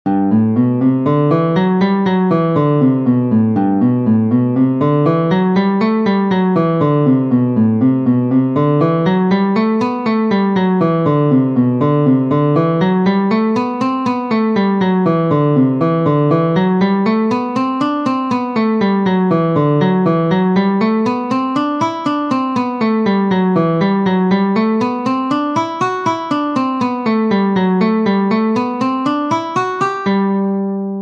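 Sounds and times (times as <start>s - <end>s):
guitar playing G major scales and modes: 0.1s - 31.0s.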